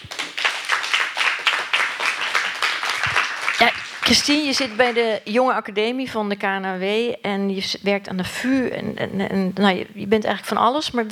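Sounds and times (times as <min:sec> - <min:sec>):
room full of people applauding: 0:00.0 - 0:05.1
speech: 0:03.6 - 0:11.1.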